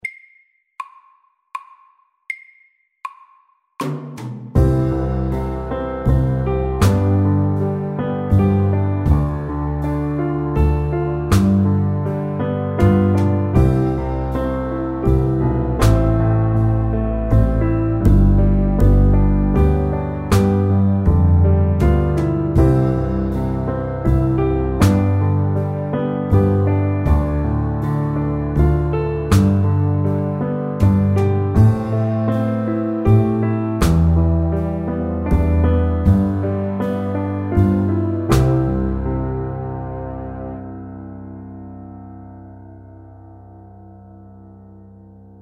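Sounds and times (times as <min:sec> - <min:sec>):
soft rock music: 0:04.6 - 0:40.0.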